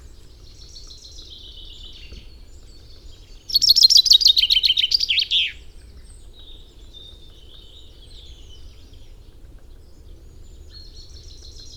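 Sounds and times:
common chaffinch Fringilla coelebs singing: 3.2 - 5.7.

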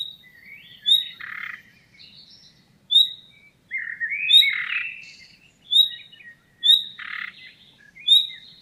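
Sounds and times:
common nightingale Luscinia megarhynchos singing: 0.0 - 8.6.

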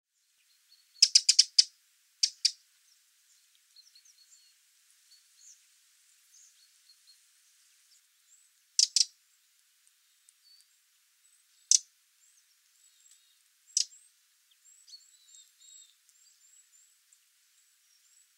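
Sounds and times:
Eurasian wren Troglodytes troglodytes giving sharp hard ticking calls: 0.7 - 2.6, 8.0 - 18.3.

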